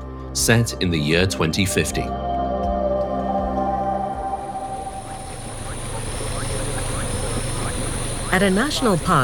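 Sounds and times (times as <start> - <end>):
speech: 0.4 - 2.2, 8.4 - 9.2
solar-powered boat motor humming in a mangrove forest in Sarawak: 2.2 - 9.2
faint birds chirping in a mangrove forest: 4.0 - 9.2
constant wash of water in a mangrove forest: 5.0 - 9.2.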